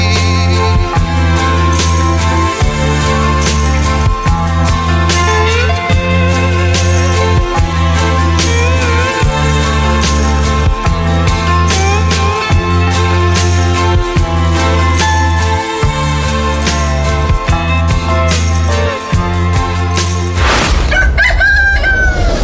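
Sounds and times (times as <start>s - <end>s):
upbeat music with a heavy beat: 0.0s - 20.4s
rooster crowing loudly: 20.8s - 22.4s.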